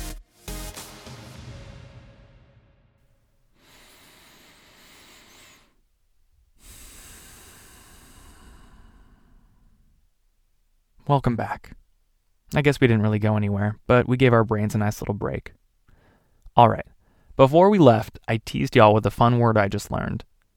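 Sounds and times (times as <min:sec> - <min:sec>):
slow deep breaths: 0:03.1 - 0:10.4, 0:15.8 - 0:17.4
speech: 0:11.1 - 0:11.8, 0:12.5 - 0:15.6, 0:16.6 - 0:20.3.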